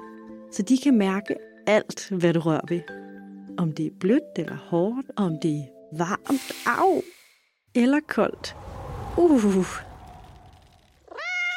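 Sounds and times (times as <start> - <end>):
speech: 0.5 - 3.0, 3.6 - 8.6, 9.2 - 9.9
cat meowing: 11.1 - 11.5.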